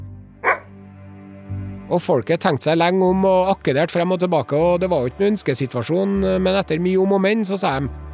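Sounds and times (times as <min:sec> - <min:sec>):
dog barking: 0:00.4 - 0:00.7
speech: 0:01.9 - 0:08.0.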